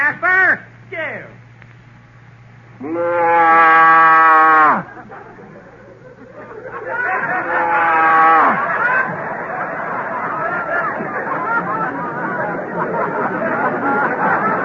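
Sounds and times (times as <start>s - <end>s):
faint hum: 0.0s - 14.6s
speech: 2.8s - 3.1s
voice imitating a cow mooing: 2.8s - 4.9s
laughter: 4.4s - 14.6s.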